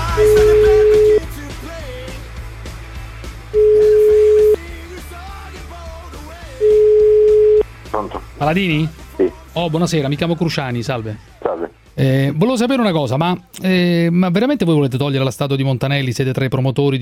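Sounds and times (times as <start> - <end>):
ringback tone of an outgoing telephone call in Italy: 0.2 - 1.3, 3.6 - 4.6, 6.6 - 7.6
speech: 8.4 - 9.0, 9.6 - 11.4, 12.0 - 17.0.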